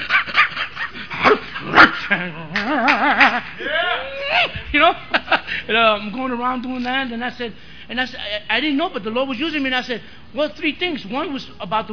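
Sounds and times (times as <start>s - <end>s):
person imitating a dog barking and whining: 1.2s - 4.6s
speech: 2.1s - 2.9s, 4.7s - 5.1s, 5.7s - 11.9s.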